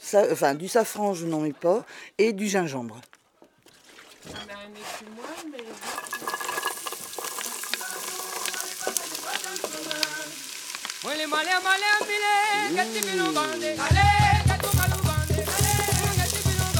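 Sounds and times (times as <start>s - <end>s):
speech: 0.1s - 3.2s, 4.2s - 6.4s, 11.0s - 14.2s
onions sizzling as they fry in a pan: 5.8s - 16.7s.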